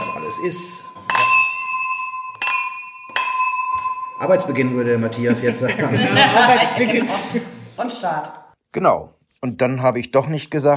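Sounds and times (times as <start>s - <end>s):
sparkling-wine glasses clinking in a toast: 0.0s - 6.5s
speech: 0.3s - 1.0s, 4.2s - 10.7s
laughter: 4.9s - 7.7s.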